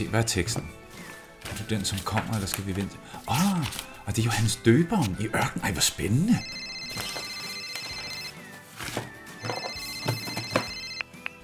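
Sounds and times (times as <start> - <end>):
speech: 0.0 - 0.8, 1.6 - 7.2
telephone ringing with a bright electronic tone: 6.3 - 11.3.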